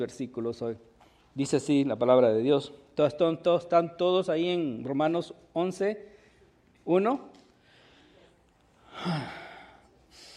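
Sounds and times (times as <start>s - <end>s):
speech: 0.0s - 6.1s, 6.8s - 7.4s, 9.0s - 9.4s
person breathing heavily after exertion: 7.6s - 10.3s.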